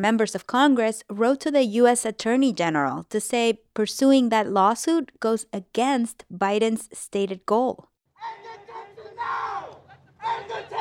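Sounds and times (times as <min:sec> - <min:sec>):
speech: 0:00.0 - 0:08.4
protesters chanting in unison at a rally in Georgia: 0:08.2 - 0:10.7.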